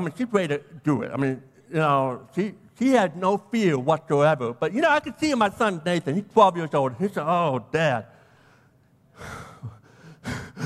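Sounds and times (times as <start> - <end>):
speech: 0.0 - 8.2
voice imitating a 12-year-old boy's heavy nervous breathing: 9.2 - 10.6.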